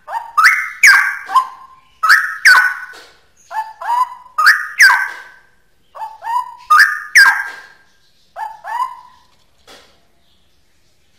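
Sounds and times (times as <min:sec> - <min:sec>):
Straw-headed bulbul singing loud whistled phrases: 0:00.1 - 0:05.4, 0:06.0 - 0:09.2.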